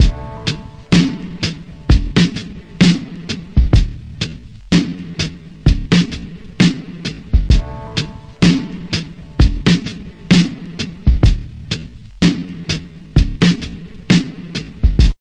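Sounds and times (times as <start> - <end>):
stretchy one hit drum loops and breaks at 64 bpm: 0.0 - 15.1.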